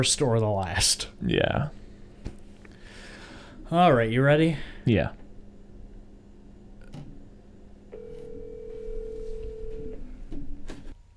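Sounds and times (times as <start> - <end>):
speech: 0.0 - 1.8, 3.7 - 5.2
phone line hum: 4.9 - 11.0
electronic ring tone heard through a telephone receiver: 8.0 - 9.9.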